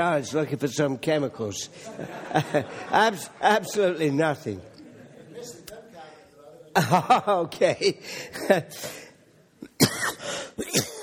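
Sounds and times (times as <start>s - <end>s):
speech: 0.0s - 4.7s, 6.8s - 9.0s
laughter: 1.7s - 5.8s, 6.7s - 9.1s
person clearing throat: 9.6s - 11.0s
person coughing: 9.6s - 11.0s.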